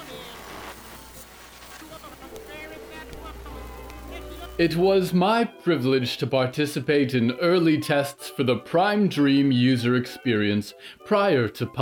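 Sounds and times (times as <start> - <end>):
steady rain: 0.0 - 4.8
speech: 4.6 - 11.7.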